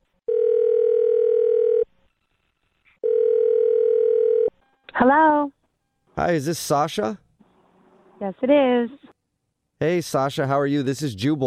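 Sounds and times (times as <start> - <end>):
steady telephone dial tone: 0.3 - 1.9, 3.0 - 4.5
speech: 6.2 - 7.2, 8.2 - 9.0, 9.8 - 11.4.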